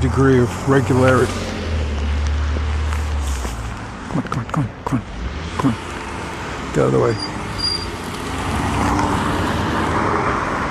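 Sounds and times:
speech: 0.0 - 1.5, 4.1 - 5.9, 6.8 - 7.3
car rumbling along the street: 0.0 - 10.6
car tire noise on road: 0.0 - 10.6.

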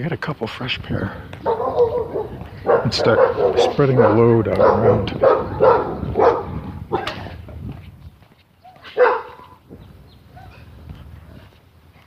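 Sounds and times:
speech: 0.0 - 1.5, 2.8 - 5.9
dogs barking behind a fence: 1.4 - 7.4, 8.6 - 9.6, 10.3 - 10.7.

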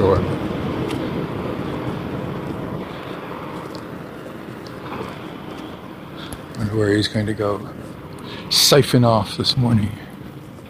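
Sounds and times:
broadband road and wind noise: 0.0 - 10.6
truck engine rumbling: 0.0 - 10.6
speech: 0.1 - 0.5, 6.8 - 7.9, 8.5 - 10.1.

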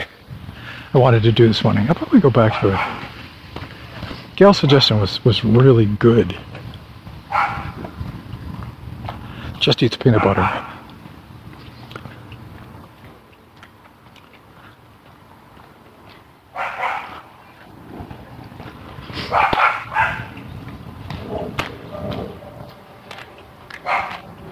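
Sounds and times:
speech: 0.9 - 3.1, 4.4 - 6.6, 9.6 - 10.7
woman's tiny dog barking in high-pitched yaps: 2.5 - 3.0, 7.3 - 7.8, 16.6 - 17.2, 19.2 - 20.4, 23.8 - 24.2.

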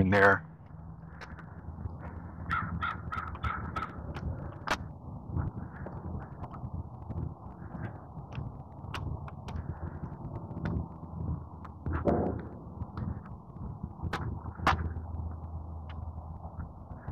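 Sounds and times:
speech: 0.0 - 0.5
steady outdoor wind: 0.0 - 17.1
crows cawing: 2.4 - 4.2.

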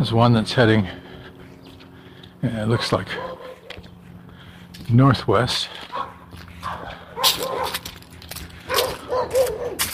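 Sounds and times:
speech: 0.0 - 1.0, 2.4 - 3.4, 4.9 - 6.1
steady low hum of noise: 0.0 - 9.9
dogs barking: 2.6 - 3.9, 5.8 - 8.0, 8.6 - 9.9.

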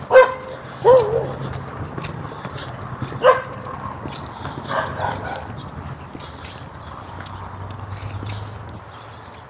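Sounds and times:
dogs barking in yards: 0.0 - 6.3
footsteps crunching: 0.0 - 9.4.

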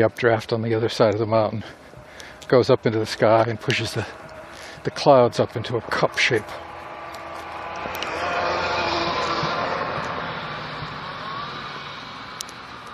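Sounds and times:
speech: 0.0 - 1.8, 2.4 - 4.2, 4.8 - 6.7
car with a rough rattly engine driving past on icy ground: 3.4 - 12.9.

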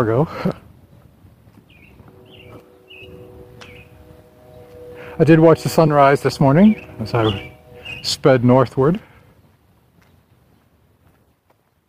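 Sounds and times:
speech: 0.0 - 0.6, 5.2 - 9.1
steady low outdoor rumble: 0.0 - 10.8
robin singing whistled phrases: 1.7 - 9.5.

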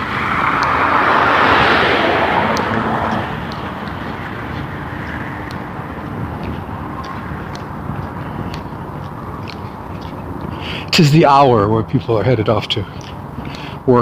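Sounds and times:
loud whoosh of a passing car: 0.0 - 9.9
steady rumble of road traffic: 0.0 - 13.9
speech: 11.0 - 13.1.

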